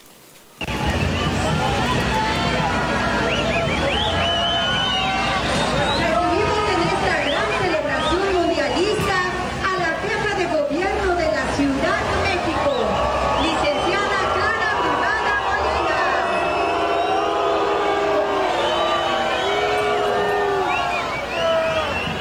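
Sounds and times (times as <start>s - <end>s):
large outdoor crowd booing at parade: 0.6s - 22.1s.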